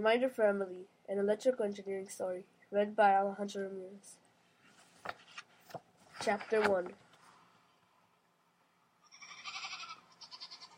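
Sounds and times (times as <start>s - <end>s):
speech: 0.0s - 4.2s, 5.0s - 7.0s
sheep bleating: 9.0s - 10.7s.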